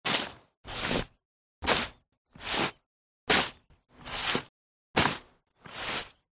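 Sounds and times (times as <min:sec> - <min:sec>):
shoveling snow: 0:00.1 - 0:06.2.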